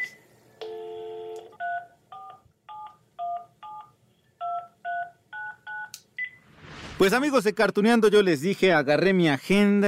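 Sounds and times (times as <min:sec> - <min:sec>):
steady telephone dial tone: 0:00.6 - 0:01.8
speech: 0:07.0 - 0:09.8.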